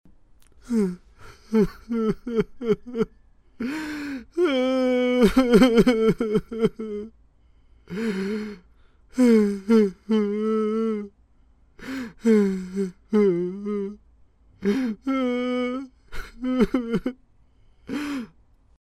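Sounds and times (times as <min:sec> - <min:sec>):
man crying: 0:00.6 - 0:07.1, 0:07.9 - 0:11.1, 0:11.8 - 0:14.0, 0:14.6 - 0:17.2, 0:17.9 - 0:18.3.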